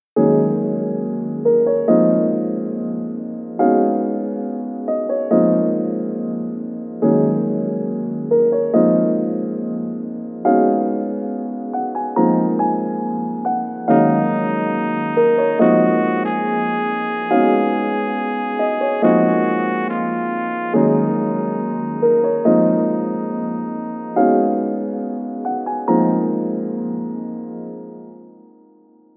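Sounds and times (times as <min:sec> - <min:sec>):
piano: 0:00.2 - 0:29.1
brass: 0:13.9 - 0:25.2.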